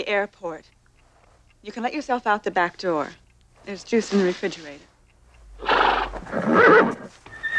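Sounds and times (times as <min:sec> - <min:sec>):
speech: 0:00.0 - 0:00.8, 0:01.6 - 0:04.9
horse snorting: 0:05.6 - 0:07.1
horse whinnying: 0:05.6 - 0:07.5.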